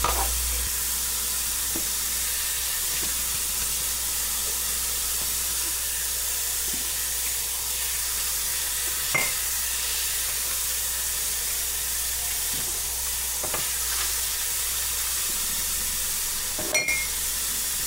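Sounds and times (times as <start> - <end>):
water running at a sink: 0.0 - 17.8
dishes clinking: 9.1 - 9.4, 16.6 - 17.2.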